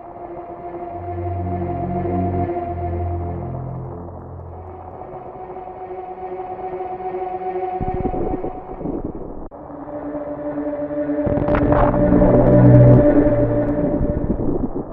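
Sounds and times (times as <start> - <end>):
eerie ambient video game music with low sustained droning tones: 0.0 - 14.9
dense crackling patter of hail-like sound effects: 3.9 - 5.8, 11.4 - 14.9.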